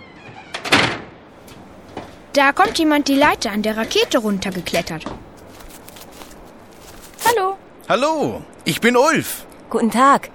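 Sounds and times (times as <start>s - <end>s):
door opening and shutting: 0.0s - 2.8s
speech: 2.4s - 5.3s, 7.9s - 10.3s.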